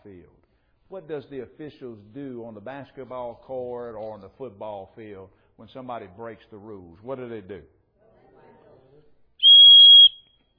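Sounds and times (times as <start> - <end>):
speech: 0.9 - 7.8
sharp shrill referee whistle blast: 9.4 - 10.5.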